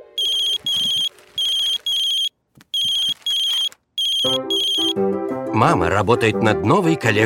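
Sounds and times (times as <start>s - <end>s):
mobile phone ringtone: 0.2s - 5.0s
speech: 4.2s - 7.2s.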